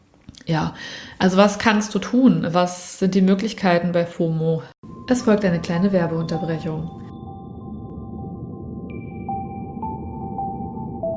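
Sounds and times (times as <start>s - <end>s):
speech: 0.5s - 7.0s
calm ambient music with sustained humming tones: 4.8s - 11.1s
high drone: 4.8s - 11.1s
soft pings: 4.9s - 8.3s.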